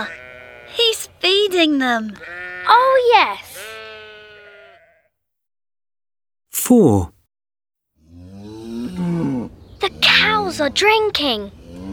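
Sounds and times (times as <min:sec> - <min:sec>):
lamb bleating on a farm: 0:00.0 - 0:00.8, 0:02.1 - 0:05.1
speech: 0:00.0 - 0:03.6, 0:06.6 - 0:07.2, 0:09.8 - 0:11.9.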